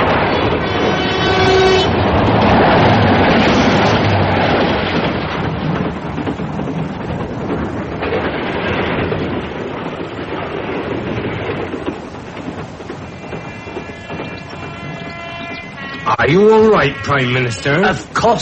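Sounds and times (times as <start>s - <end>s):
brief horn-like train tone: 0.0s - 4.1s, 13.1s - 18.0s
train rushing past at speed with roar of wheels and rushing air: 0.0s - 18.4s
speech: 16.3s - 18.4s.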